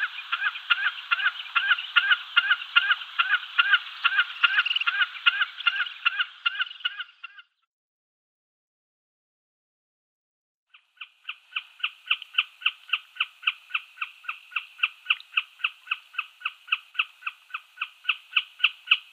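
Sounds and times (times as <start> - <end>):
common snipe display call: 0.0 - 7.4, 11.0 - 19.1.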